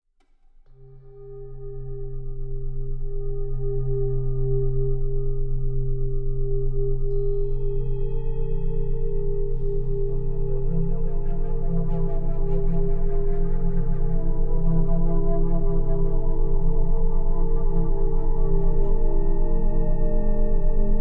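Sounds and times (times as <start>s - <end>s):
20 Hz Rife frequency tone: 0.7s - 20.9s.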